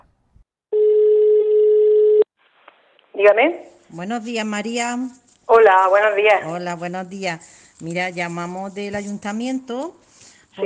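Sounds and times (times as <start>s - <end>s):
telephone ringback tone: 0.8s - 2.2s
speech: 3.2s - 10.6s.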